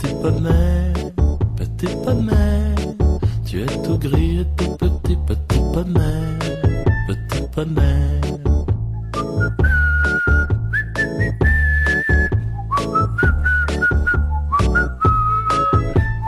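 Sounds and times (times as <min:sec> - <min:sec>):
steady musical backing: 0:00.0 - 0:16.2
speech: 0:00.2 - 0:00.8
whistled melody: 0:05.6 - 0:16.2.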